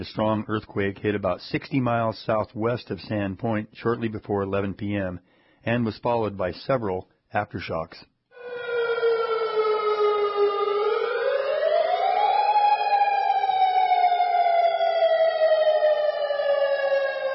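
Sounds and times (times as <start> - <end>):
speech: 0.0 - 8.1
loud continuous outdoor tsunami warning siren wailing in Sand Point and Kodiak Alaska: 8.4 - 17.3.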